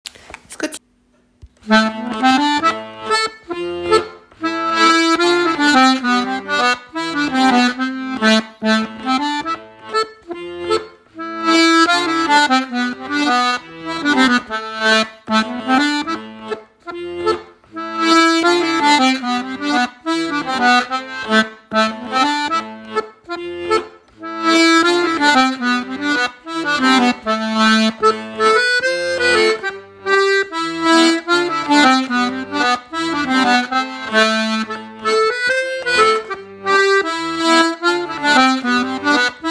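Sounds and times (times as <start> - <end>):
Scottish accordion music: 1.4 - 39.4.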